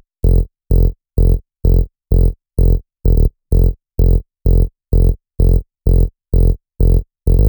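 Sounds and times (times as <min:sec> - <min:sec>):
tonal bass loop in F: 0:00.2 - 0:07.4.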